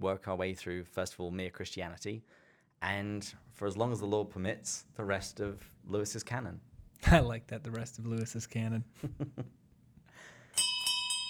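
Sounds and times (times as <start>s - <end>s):
speech: 0.0s - 9.6s
bartender ringing a bell for last call in a pub: 10.6s - 11.2s.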